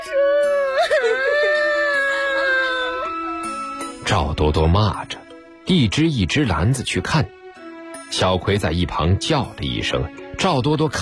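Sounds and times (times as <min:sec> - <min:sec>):
child crying and wailing: 0:00.0 - 0:04.0
speech: 0:04.1 - 0:07.4, 0:08.1 - 0:11.0.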